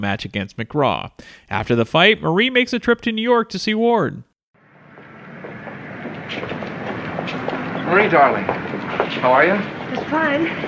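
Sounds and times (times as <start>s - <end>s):
speech: 0.0s - 4.3s, 7.3s - 10.6s
train rolling along the rails with a rumbling roar: 4.7s - 10.6s.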